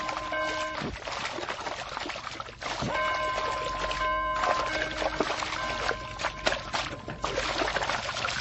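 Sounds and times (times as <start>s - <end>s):
ringing bell: 0.0s - 0.8s, 2.9s - 7.4s
seawater churning and splashing as sharks gather: 0.0s - 8.3s.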